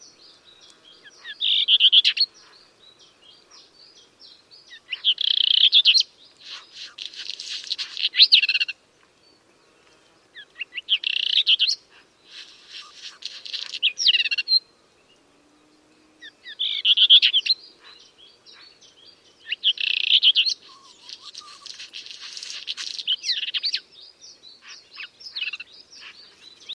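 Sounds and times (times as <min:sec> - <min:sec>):
black redstart singing: 0:00.0 - 0:26.7.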